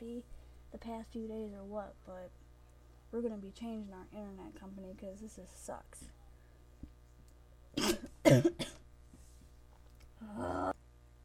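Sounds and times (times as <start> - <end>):
speech: 0.2 - 2.4, 3.1 - 6.2, 7.8 - 8.8, 10.2 - 10.7
harsh coughs: 7.8 - 8.8.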